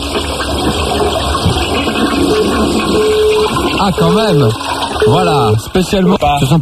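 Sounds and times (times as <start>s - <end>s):
toilet flushing: 0.0s - 6.6s
speech: 3.8s - 6.6s.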